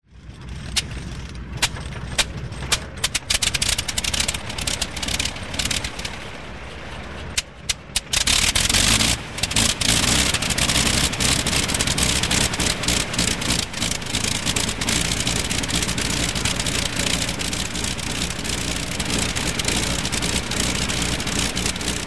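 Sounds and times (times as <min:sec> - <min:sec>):
Fokker aircraft engine starting: 0:00.1 - 0:22.0.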